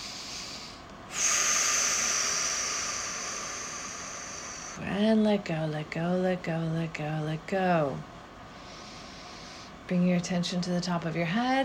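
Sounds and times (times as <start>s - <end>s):
deep breath in and out during meditation: 0.0s - 4.8s, 8.5s - 9.8s
speech: 4.9s - 8.1s, 9.9s - 11.6s.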